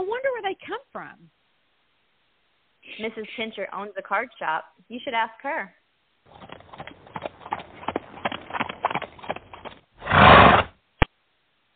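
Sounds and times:
speech: 0.0s - 1.4s, 2.8s - 6.6s
horse hooves clip-clopping in the snow: 6.3s - 9.9s
sharp horse snort: 6.3s - 10.8s
horse whinnying loudly: 9.0s - 10.7s.

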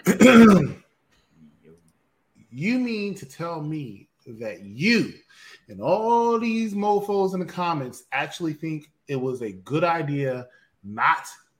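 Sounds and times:
throat clearing: 0.0s - 0.8s
speech: 0.1s - 0.8s, 2.6s - 11.4s.

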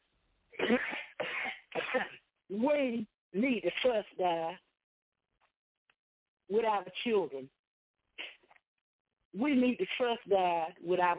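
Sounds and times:
speech: 0.6s - 0.9s, 2.6s - 4.6s, 6.5s - 7.6s, 9.3s - 11.1s
preacher coughing during a sermon: 0.6s - 2.2s.

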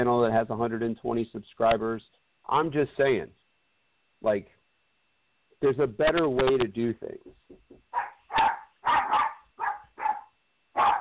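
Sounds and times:
speech: 0.0s - 3.4s, 4.2s - 4.6s, 5.6s - 8.5s
dog barking: 7.9s - 10.9s.

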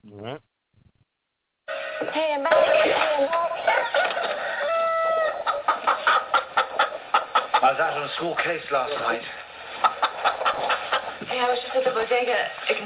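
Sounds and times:
fighting roosters crowing and clucking: 1.7s - 12.8s
rooster squawk: 3.8s - 7.7s, 9.8s - 11.2s
speech: 7.8s - 9.4s, 11.4s - 12.8s.

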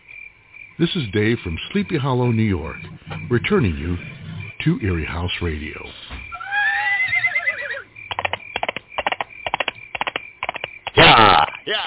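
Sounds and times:
speech: 0.8s - 6.3s
hooves clopping: 1.7s - 4.6s, 5.9s - 11.1s
horse whinnying: 6.3s - 7.9s.

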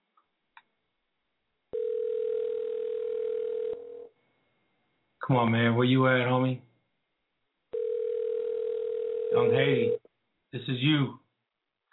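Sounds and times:
electronic ringback tone of an outgoing phone call: 1.7s - 4.1s, 7.8s - 10.0s
speech: 5.3s - 6.7s, 9.4s - 11.2s.

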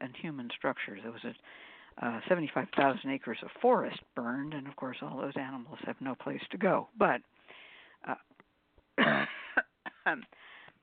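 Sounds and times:
speech: 0.1s - 7.3s, 8.0s - 8.3s, 10.0s - 10.5s
person coughing: 9.0s - 10.2s.

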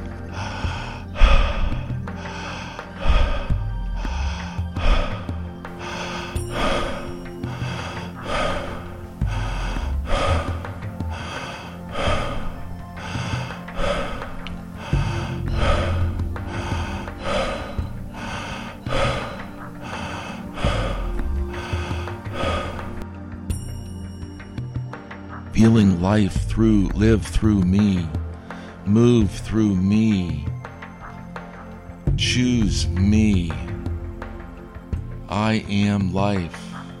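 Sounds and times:
breathing in and out through the mouth: 0.0s - 23.0s
speech: 25.6s - 28.2s, 28.9s - 30.5s, 32.2s - 33.7s, 35.4s - 36.7s.

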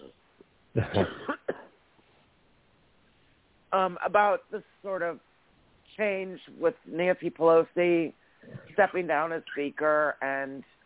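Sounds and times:
speech: 0.8s - 1.3s, 3.7s - 5.3s, 6.0s - 10.8s
person with a bad cold coughing: 0.8s - 1.7s.

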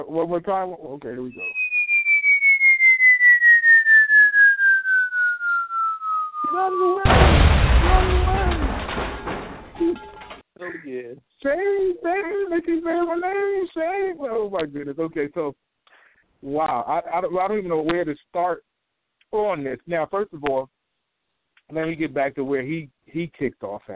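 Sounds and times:
speech: 0.0s - 1.6s, 6.5s - 9.2s, 9.8s - 15.6s, 16.4s - 18.7s, 19.3s - 20.8s, 21.7s - 23.9s
long steadily falling whistle: 1.3s - 7.0s
loud rumbling explosion: 7.0s - 10.0s.

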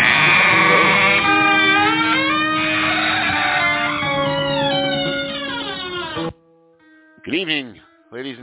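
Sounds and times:
goat bleating: 0.0s - 6.3s.

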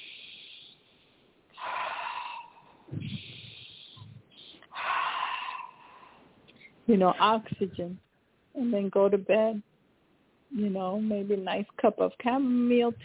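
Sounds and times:
deep slow breathing during a spoken prayer: 0.0s - 6.7s
speech: 6.9s - 8.0s, 8.6s - 9.7s, 10.5s - 13.0s.

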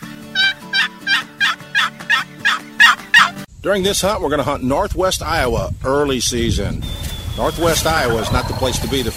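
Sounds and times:
basic hen turkey yelps played on a box call: 0.3s - 3.4s
speech: 3.6s - 9.1s.

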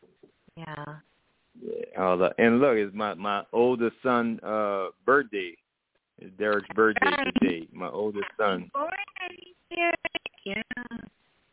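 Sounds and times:
narrow-band voice over a choppy phone line: 1.6s - 5.5s, 6.4s - 9.4s
speech: 2.0s - 5.6s, 6.2s - 9.1s.

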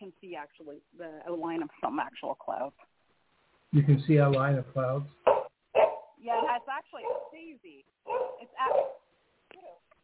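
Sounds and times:
speech: 0.2s - 2.9s, 3.7s - 5.3s, 6.2s - 9.0s
dog giving short whiny barks: 5.2s - 7.4s, 8.1s - 9.8s.

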